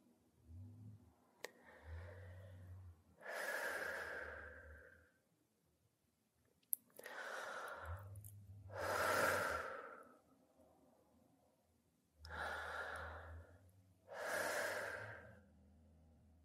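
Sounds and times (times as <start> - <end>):
deep breaths in and out: 1.4 - 5.2, 7.0 - 10.4, 12.2 - 15.7.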